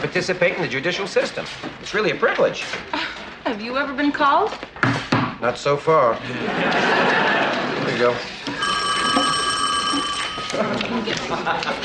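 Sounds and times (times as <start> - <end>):
speech: 0.0 - 7.3, 8.0 - 8.4, 10.6 - 11.8
laughter: 6.2 - 8.4, 10.4 - 11.8
old-style telephone bell ringing: 8.4 - 10.9.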